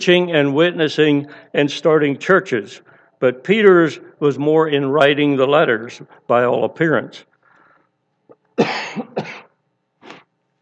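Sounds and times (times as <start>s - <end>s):
speech: 0.0s - 7.3s, 8.6s - 9.4s
throat-clearing cough: 8.6s - 9.6s.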